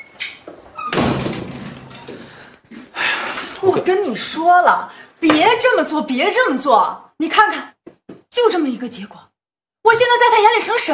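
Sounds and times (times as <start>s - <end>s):
room door shut with a solid thunk: 0.8s - 2.2s
speech: 3.6s - 7.7s, 8.4s - 10.9s.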